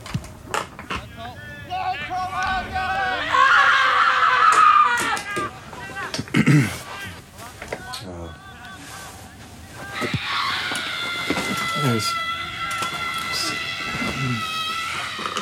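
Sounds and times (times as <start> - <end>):
scattered voices: 0.8 - 15.4
several people shrieking and yelling: 1.4 - 6.1, 7.8 - 15.4.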